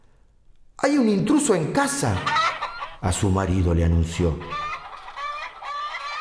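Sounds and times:
speech: 0.8s - 4.6s
hen clucking: 2.1s - 3.3s, 4.2s - 6.2s.

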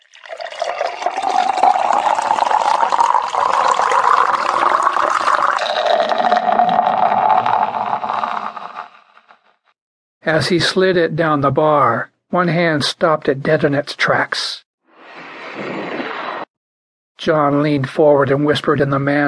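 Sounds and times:
root beer pouring from a tap into a mug at a bar: 0.0s - 8.9s
speech: 10.3s - 14.6s, 17.2s - 19.2s.

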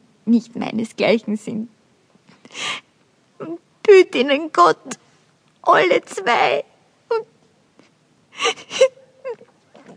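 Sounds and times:
speech: 0.3s - 1.8s, 3.4s - 5.0s, 5.6s - 7.3s
woman sobbing with breathy gasps: 8.3s - 9.5s.

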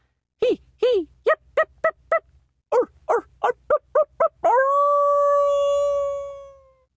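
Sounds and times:
coyote yipping and howling: 1.6s - 6.7s.

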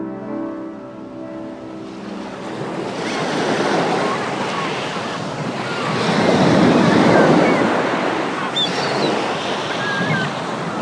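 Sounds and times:
ocean surf washing onto a sandy beach: 0.3s - 10.7s
faint high chirps: 7.0s - 10.5s.

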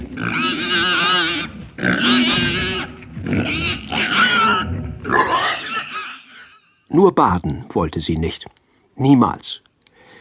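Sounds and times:
pig grunting happily: 0.0s - 6.7s
speech: 7.0s - 9.7s.

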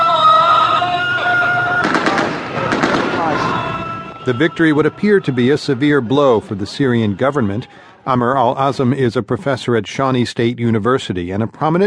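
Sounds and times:
sustained chanting prayers: 0.0s - 9.7s
celebratory automatic gunfire by rebels after capturing an army base in eastern Syria: 1.8s - 3.4s
speech: 4.3s - 11.8s.

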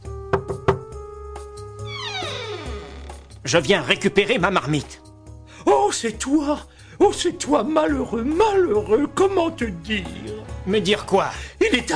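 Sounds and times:
neighbour knocking on a door: 0.3s - 1.0s
long sliding descending tone: 1.9s - 3.2s
speech: 3.5s - 11.9s.

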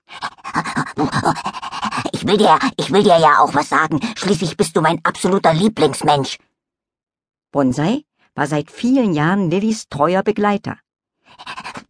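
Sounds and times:
dog panting excitedly: 0.0s - 4.3s, 11.3s - 11.8s
speech: 1.0s - 6.5s, 7.5s - 11.8s.

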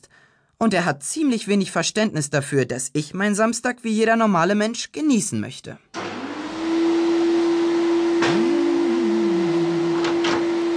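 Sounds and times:
speech: 0.6s - 5.9s
vacuum cleaner running: 6.0s - 10.7s.

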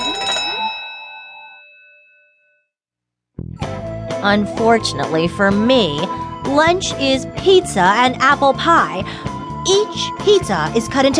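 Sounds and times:
school lunch bell ringing: 0.0s - 2.7s
speech: 4.2s - 11.1s.

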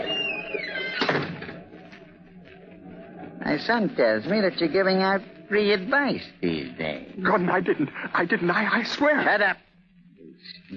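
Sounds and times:
door hinge creak: 0.0s - 1.6s
speech: 3.5s - 9.7s.

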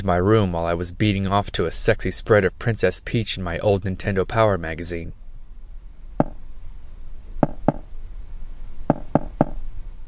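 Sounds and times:
speech: 0.0s - 5.2s
faint hum: 0.0s - 10.0s
sharp knocks on a door in a coded pattern: 7.4s - 7.8s, 8.9s - 9.6s.

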